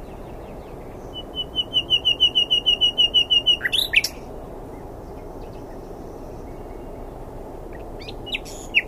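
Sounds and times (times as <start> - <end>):
common nightingale Luscinia megarhynchos singing: 0.0 - 8.8.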